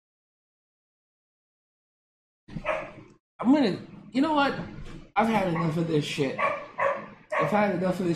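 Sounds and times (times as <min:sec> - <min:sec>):
dog barking and yelping: 0:02.5 - 0:03.0, 0:05.4 - 0:05.8, 0:06.4 - 0:07.6
speech: 0:03.4 - 0:06.6, 0:07.4 - 0:08.1.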